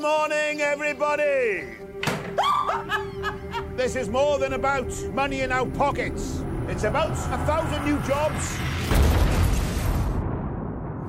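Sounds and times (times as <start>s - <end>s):
speech: 0.0s - 9.0s
laughter: 2.4s - 4.0s
gas explosion with deep rumbling boom: 8.7s - 11.0s.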